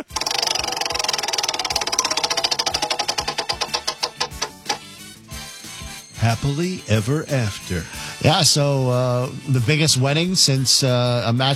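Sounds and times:
prize wheel spinning: 0.0s - 5.0s
speech: 6.2s - 11.5s.

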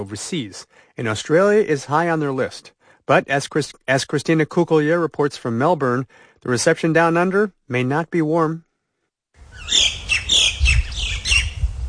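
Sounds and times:
speech: 0.0s - 8.7s, 9.6s - 10.0s
native birds squawking in harsh bursts: 9.5s - 11.6s.

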